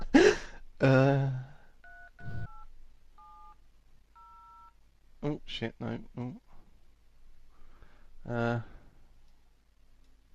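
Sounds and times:
speech: 0.8 - 1.5, 5.2 - 6.4, 8.2 - 8.7
dual-tone phone keypad dialing beeps: 1.8 - 3.6, 4.2 - 4.7.

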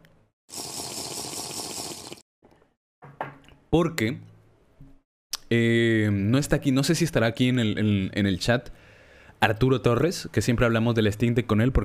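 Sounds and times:
person sipping water: 0.5 - 2.2
speech: 3.7 - 4.3, 5.5 - 8.8, 9.4 - 11.8.

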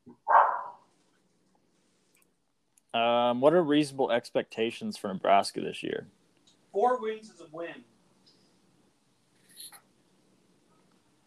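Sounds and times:
dog barking: 0.3 - 0.8
speech: 3.0 - 6.2, 6.8 - 7.9.

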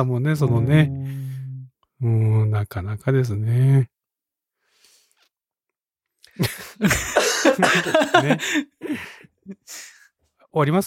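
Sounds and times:
speech: 0.0 - 1.3, 2.0 - 3.9, 6.4 - 9.9, 10.5 - 10.8
laughter: 6.4 - 8.7
harsh coughing: 6.9 - 8.4.

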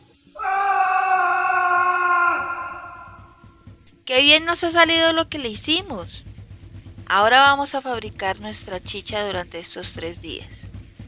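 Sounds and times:
person screaming: 0.4 - 3.2
speech: 4.1 - 6.3, 7.1 - 10.6.

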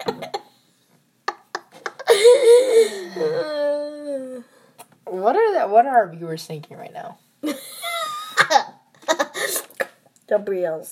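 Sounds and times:
long drawn-out yawn sliding downward in pitch: 2.1 - 4.6
breathy vocal sounds: 2.1 - 4.8
speech: 5.3 - 7.2, 10.3 - 10.8.

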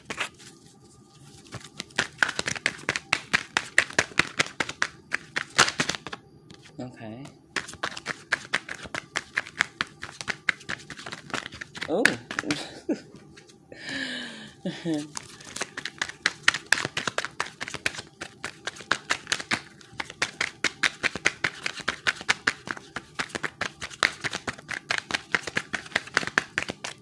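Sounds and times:
tarot cards being shuffled and drawn: 0.0 - 6.8, 7.5 - 13.6, 14.8 - 26.9
speech: 6.8 - 7.4, 11.9 - 13.2, 14.6 - 15.2.

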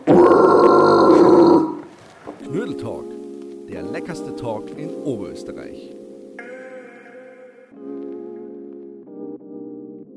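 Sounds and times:
drawn-out guttural throat-clearing growl by a person: 0.0 - 1.9
speech: 3.7 - 6.0.

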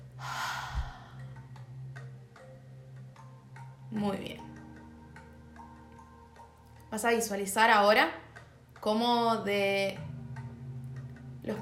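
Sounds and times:
deep breath in and out during a guided relaxation exercise: 0.0 - 1.5
speech: 3.9 - 4.5, 7.0 - 8.2, 8.8 - 10.1.

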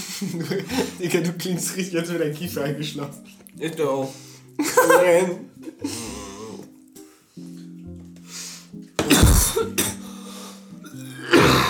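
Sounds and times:
laughter: 0.0 - 1.4, 4.6 - 5.9
speech: 0.2 - 6.0
person coughing loudly in harsh bursts: 9.0 - 10.0.

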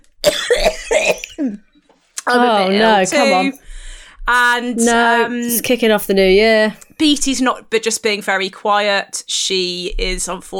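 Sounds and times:
person coughing harshly: 0.2 - 1.6
speech: 2.3 - 3.6, 4.3 - 10.5.

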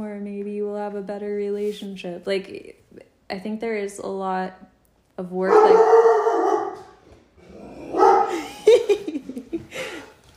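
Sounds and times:
speech: 0.0 - 6.0
dog barking and yipping: 5.5 - 7.0, 7.8 - 8.4
dog howling: 5.5 - 8.4
laughter: 8.3 - 10.2.

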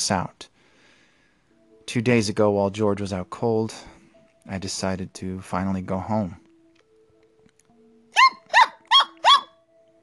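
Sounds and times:
speech: 0.0 - 0.5, 1.9 - 6.4
dog barking: 8.2 - 9.6.

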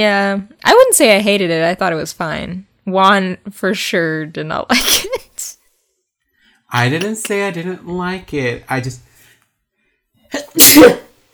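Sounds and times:
speech: 0.0 - 5.6, 6.7 - 9.1, 10.3 - 11.0
person sneezing: 10.4 - 11.2.

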